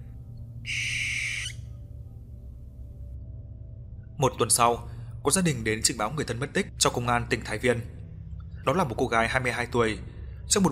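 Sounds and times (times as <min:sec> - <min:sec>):
low steady hum: 0:00.0 - 0:10.7
owl screeching at night in a dark forest: 0:00.6 - 0:01.7
speech: 0:04.2 - 0:08.0, 0:08.6 - 0:10.7.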